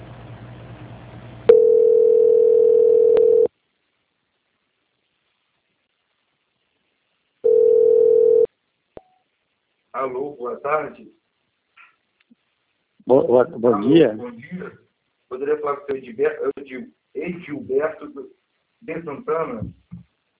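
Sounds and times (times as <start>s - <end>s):
single-pitched telephone line tone during a call transfer: 1.5s - 3.5s, 7.4s - 8.5s
speech: 10.0s - 11.2s, 13.1s - 19.8s.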